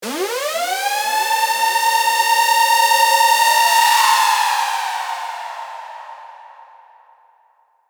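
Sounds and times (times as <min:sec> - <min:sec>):
riser siren sweep: 0:00.0 - 0:05.0.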